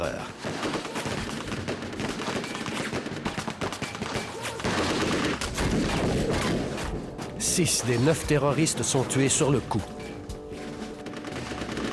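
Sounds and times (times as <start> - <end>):
machine guns firing armor-piercing bullets at a train car: 0.4 - 6.7, 11.0 - 11.9
speech: 7.6 - 10.0.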